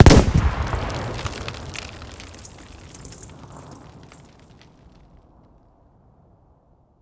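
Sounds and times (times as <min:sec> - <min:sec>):
explosions: 0:00.0 - 0:04.2.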